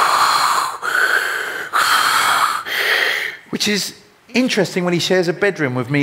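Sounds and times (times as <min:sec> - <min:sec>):
man imitating the wheezy raspy breathing of a baby: 0:00.0 - 0:03.5
speech: 0:03.5 - 0:06.0.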